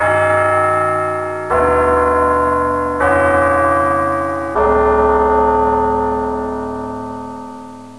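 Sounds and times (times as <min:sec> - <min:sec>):
bell ringing: 0:00.0 - 0:07.9.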